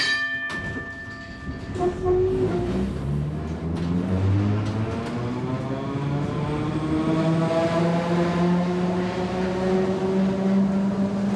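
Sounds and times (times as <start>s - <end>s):
old functionalist-style tram rumbling along rails: 0.1s - 11.3s
bright metallic ringing and squealing tones of tram: 0.9s - 3.0s.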